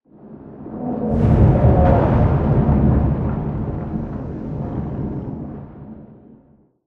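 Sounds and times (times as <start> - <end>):
interior explosion rumble with wash tail: 0.1 - 6.6.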